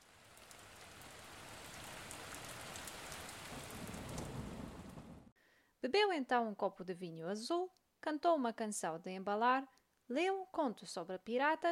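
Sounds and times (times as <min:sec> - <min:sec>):
sudden rain pouring down at night: 0:00.0 - 0:05.3
speech: 0:05.8 - 0:11.6.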